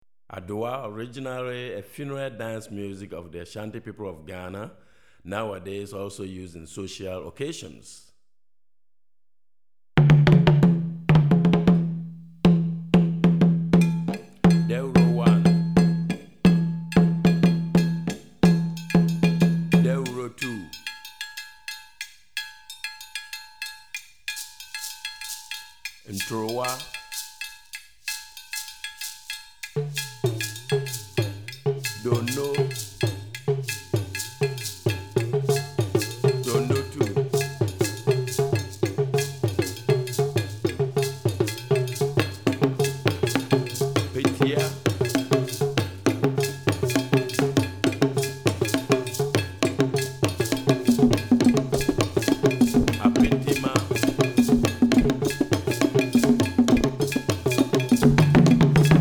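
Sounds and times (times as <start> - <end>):
West African Adowa rhythm on drumset: 10.0 - 20.7, 29.2 - 58.9.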